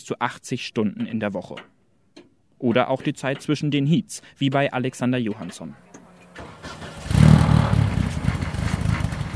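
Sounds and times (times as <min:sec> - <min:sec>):
speech: 0:00.0 - 0:01.7, 0:02.6 - 0:05.9
race car engine rumbling after repairs: 0:06.3 - 0:09.3.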